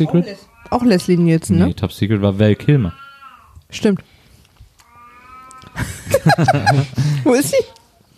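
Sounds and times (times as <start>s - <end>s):
speech: 0.0s - 3.0s, 3.7s - 4.1s, 5.8s - 7.8s
cat yowling with a low moaning wail: 0.4s - 1.4s, 2.6s - 3.6s, 4.8s - 5.8s
laughter: 5.8s - 7.4s.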